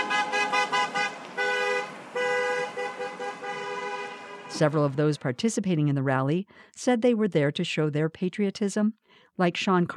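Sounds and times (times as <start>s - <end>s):
car horns honking from passing vehicles: 0.0s - 4.9s
low hum of road traffic: 0.0s - 9.9s
speech: 4.6s - 9.9s.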